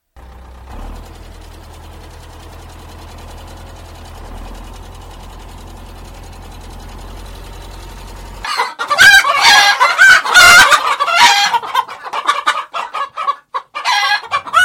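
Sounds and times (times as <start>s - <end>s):
rooster crowing in a henhouse: 8.4s - 11.6s, 13.8s - 14.6s
chickens clucking in a large henhouse: 8.4s - 14.6s.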